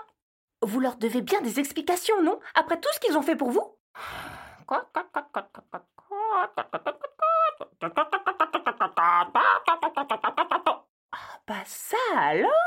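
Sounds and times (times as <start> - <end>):
speech: 0.6 - 7.1, 7.8 - 8.2, 9.0 - 10.4, 11.2 - 12.6
voice imitating hens clucking and squawking: 4.7 - 10.9.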